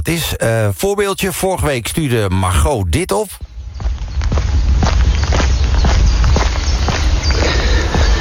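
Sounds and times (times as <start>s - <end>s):
speech: 0.0s - 3.5s
footsteps crunching along an outdoor polder path: 2.6s - 8.1s
constant low rumble of wind: 3.4s - 8.1s.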